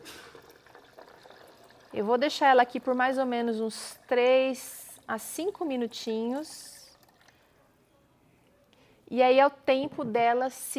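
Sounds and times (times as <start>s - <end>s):
boiling water poured over dry unsoaked cashew nuts in a container: 0.0s - 7.4s
speech: 1.9s - 6.7s, 9.1s - 10.7s.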